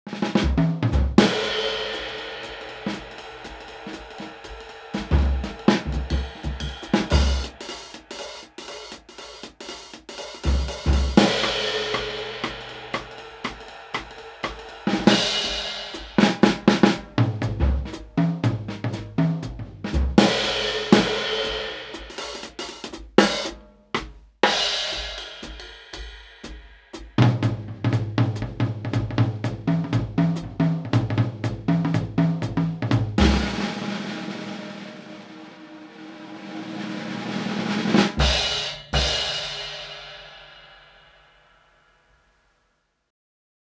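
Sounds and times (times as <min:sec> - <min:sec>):
jazz drums: 0:00.1 - 0:35.6, 0:36.7 - 0:40.9.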